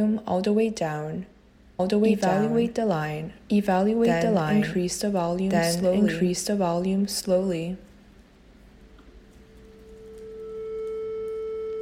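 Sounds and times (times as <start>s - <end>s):
speech: 0.0s - 7.9s
faint hum: 0.0s - 11.7s
pure sine tone generated by code in a computer music language: 9.4s - 11.7s.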